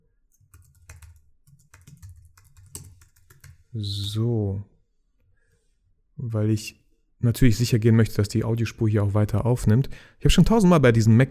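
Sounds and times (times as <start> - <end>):
typing a password on a MacBook laptop keyboard: 0.3 - 3.7
speech: 3.7 - 4.7, 6.2 - 11.2.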